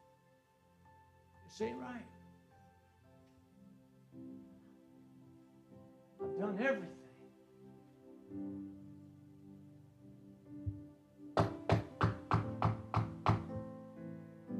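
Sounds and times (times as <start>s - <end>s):
speech: 1.5s - 2.2s, 6.4s - 7.0s
knocking on a door: 11.4s - 13.6s.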